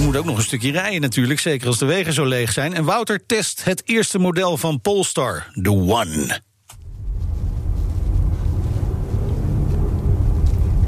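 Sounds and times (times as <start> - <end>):
speech: 0.1 - 6.5
hybrid car combustion engine rumbling: 6.8 - 10.8.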